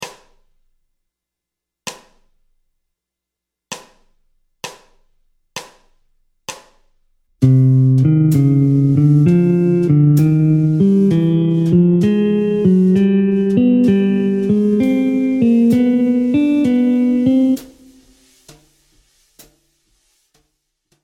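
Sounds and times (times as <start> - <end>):
jazz guitar playing ascending bebop C harmonic minor scale: 7.4 - 18.2.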